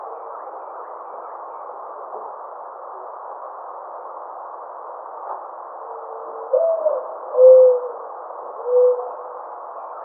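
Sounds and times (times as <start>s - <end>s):
mourning dove cooing: 6.5s - 8.0s, 8.6s - 9.2s.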